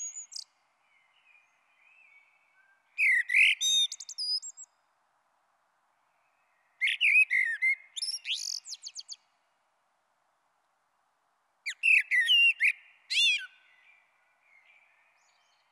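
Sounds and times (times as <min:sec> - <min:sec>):
common blackbird song: 0:00.0 - 0:04.9, 0:06.0 - 0:09.5, 0:11.6 - 0:15.7.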